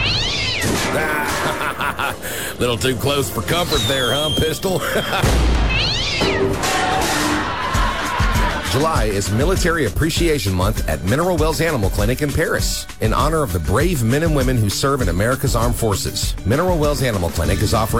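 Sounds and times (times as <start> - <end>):
cat meowing: 0.0 - 1.7, 5.7 - 7.9
fireworks crackling in a backyard: 0.0 - 6.1
laughter: 0.8 - 5.4, 6.8 - 9.4
speech: 1.8 - 7.5, 8.7 - 17.9.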